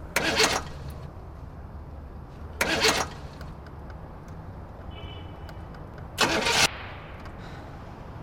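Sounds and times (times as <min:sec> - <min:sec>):
car engine cranking but failing to start: 0:00.0 - 0:01.1, 0:02.5 - 0:04.6, 0:05.7 - 0:06.7.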